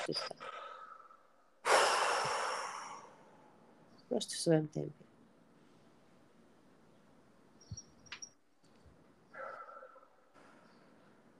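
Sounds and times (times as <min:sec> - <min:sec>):
speech: 0:00.0 - 0:00.6, 0:04.1 - 0:05.0
person breathing deeply: 0:00.4 - 0:03.4.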